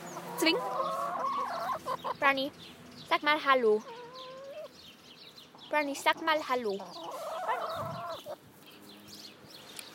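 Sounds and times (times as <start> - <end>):
hens clucking and squawking: 0.0 - 2.4, 3.5 - 4.8, 5.5 - 8.4
speech: 0.4 - 0.8, 2.0 - 4.0, 5.7 - 7.6.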